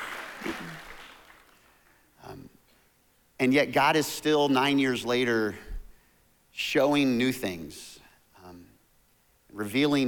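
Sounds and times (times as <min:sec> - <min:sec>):
light scattered clapping from a small audience: 0:00.0 - 0:02.0
speech: 0:03.4 - 0:05.7, 0:06.6 - 0:07.9, 0:09.6 - 0:10.0.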